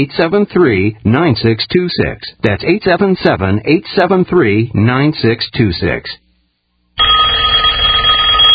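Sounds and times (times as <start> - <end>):
speech: 0.0 - 6.2
telephone bell ringing: 7.0 - 8.5.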